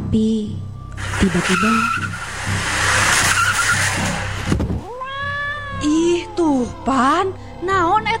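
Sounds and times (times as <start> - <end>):
speech: 0.1 - 2.7, 5.9 - 8.1
car slowing down with road and engine noise: 0.6 - 8.1
high wavering squeal: 0.8 - 7.6
sharp hit: 1.0 - 4.9.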